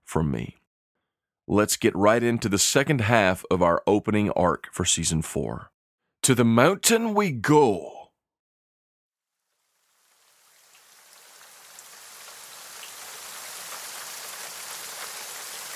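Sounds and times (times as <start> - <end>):
speech: 0.1 - 0.6, 1.5 - 8.0
cold rain beating against tavern windows in a far northern town: 9.6 - 15.7.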